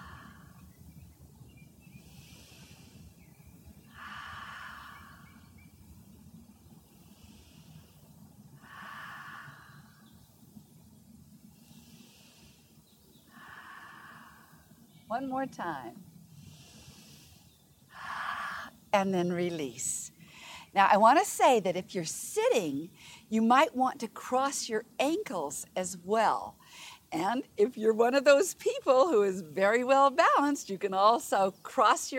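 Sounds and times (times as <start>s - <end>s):
slow breathing in through the nose and out through the mouth during stretching: 0.0s - 15.2s, 16.0s - 18.9s, 19.8s - 20.8s, 22.9s - 23.3s, 26.6s - 27.2s
low rumble: 0.0s - 32.1s
speech: 15.1s - 16.1s, 18.9s - 20.0s, 20.7s - 32.1s.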